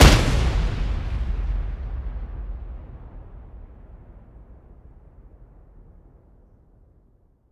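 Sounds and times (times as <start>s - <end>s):
missile impact explosion: 0.0s - 5.9s.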